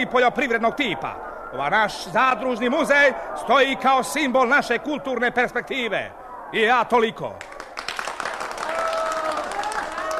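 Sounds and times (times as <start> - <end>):
speech: 0.0 - 7.5
crowd applause welcoming a short speech at a cooperative museum opening: 7.4 - 10.1.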